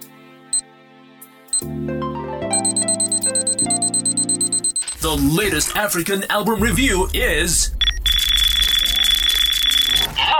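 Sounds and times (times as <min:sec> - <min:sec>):
countdown timer ticking in a fast steady rhythm: 0:02.5 - 0:10.0
speech: 0:05.0 - 0:07.8.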